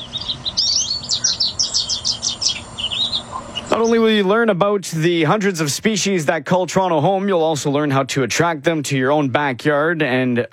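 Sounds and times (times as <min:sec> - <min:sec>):
birds chirping and singing in bright trills: 0:00.0 - 0:04.4
low hum: 0:00.0 - 0:10.5
speech: 0:03.7 - 0:10.5.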